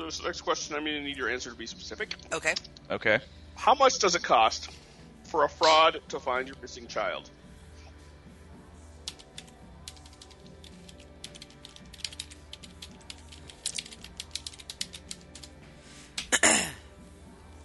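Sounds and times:
speech: 0.0 - 7.4
typing on a computer keyboard: 9.0 - 15.6.

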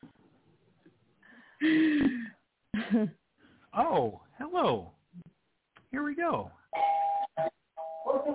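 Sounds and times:
speech: 1.7 - 1.9, 2.9 - 3.2, 3.9 - 4.9
electronic doorbell chime: 6.7 - 8.2.

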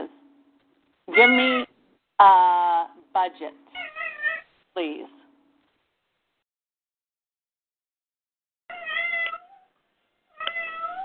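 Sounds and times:
pet cat meowing: 1.1 - 1.7, 3.7 - 4.5, 8.7 - 11.0
speech: 1.2 - 2.5, 3.2 - 3.8, 4.8 - 5.2.

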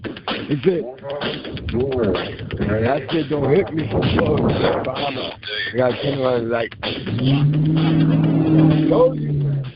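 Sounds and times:
speech: 0.5 - 9.4
car engine revving as it accelerates: 6.9 - 9.7.

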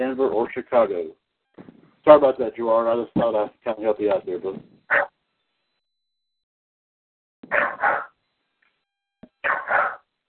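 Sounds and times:
speech: 0.0 - 5.1
dog barking: 4.9 - 5.2, 7.5 - 8.2, 9.4 - 10.0.

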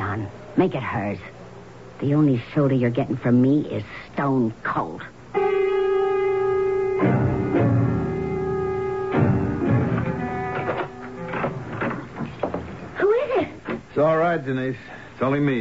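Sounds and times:
droning hum: 0.0 - 15.4
speech: 0.2 - 1.4, 2.0 - 5.2, 14.0 - 15.6
door opening and closing: 9.0 - 13.0.

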